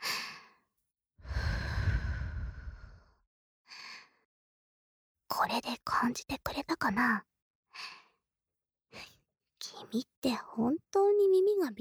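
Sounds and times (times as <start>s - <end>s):
long drawn-out sigh: 1.2s - 3.1s
close breathing right at the microphone: 1.2s - 4.2s, 7.8s - 8.2s
speech: 5.4s - 8.0s, 9.7s - 11.8s.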